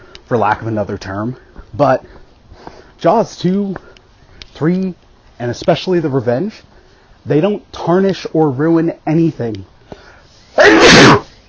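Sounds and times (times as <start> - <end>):
speech: 0.3 - 2.2, 3.0 - 3.9, 4.6 - 9.7, 10.6 - 11.2
person sneezing loudly: 10.6 - 11.3.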